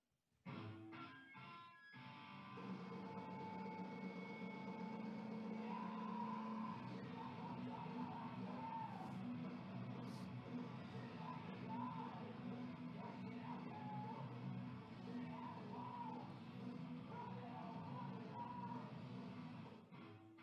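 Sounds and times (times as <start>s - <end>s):
distorted guitars: 0.5s - 20.4s
loud dense punk rock music: 0.5s - 20.4s
harsh screamed vocals: 5.0s - 10.2s, 10.8s - 14.4s, 15.0s - 19.0s.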